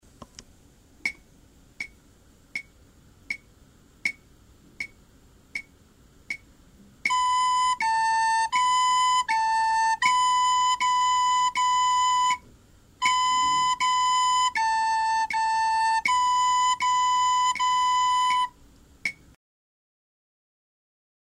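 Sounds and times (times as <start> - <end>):
recorder melody played by third-graders: 7.0 - 19.2.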